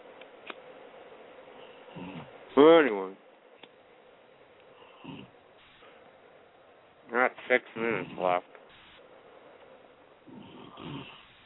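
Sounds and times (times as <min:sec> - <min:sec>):
faint snoring: 0:01.6 - 0:02.4, 0:04.8 - 0:05.4, 0:07.9 - 0:08.4, 0:10.2 - 0:11.4
speech: 0:02.0 - 0:03.2.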